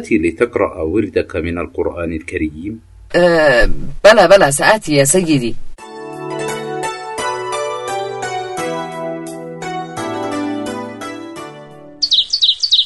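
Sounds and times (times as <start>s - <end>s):
speech: 0.0s - 5.7s
gentle melodic tune: 5.8s - 12.8s
small birds chirping at sunrise: 12.0s - 12.8s.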